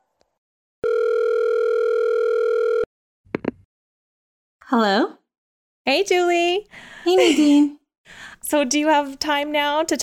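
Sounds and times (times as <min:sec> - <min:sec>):
telephone ringing tone: 0:00.8 - 0:02.9
speech: 0:04.7 - 0:05.2, 0:05.9 - 0:10.0.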